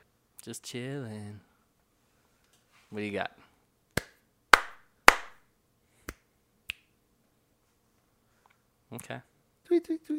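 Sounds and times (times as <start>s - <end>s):
speech: 0.4s - 1.5s, 2.9s - 3.5s, 9.0s - 10.1s
crisp finger snaps: 3.9s - 5.3s, 6.0s - 7.0s
sharp hand slaps with short ringing tails: 4.0s - 5.4s.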